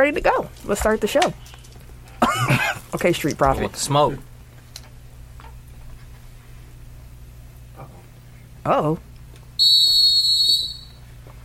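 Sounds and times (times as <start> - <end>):
speech: 0.0 - 1.5, 2.2 - 4.3, 8.6 - 9.1
shrill whistle blast: 9.6 - 11.0.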